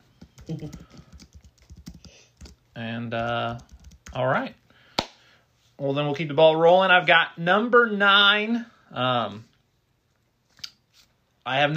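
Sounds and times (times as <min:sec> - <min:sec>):
person typing a list into a document on a computer keyboard: 0:00.1 - 0:02.6, 0:03.2 - 0:04.2
speech: 0:00.5 - 0:01.0, 0:02.8 - 0:04.6, 0:05.8 - 0:09.5, 0:11.4 - 0:11.7.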